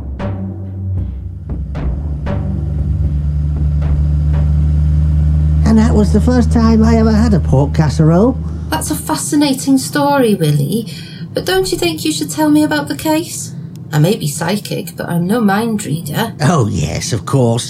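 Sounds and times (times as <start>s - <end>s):
car engine droning during a drive: 0.2s - 11.9s
speech: 5.8s - 17.6s.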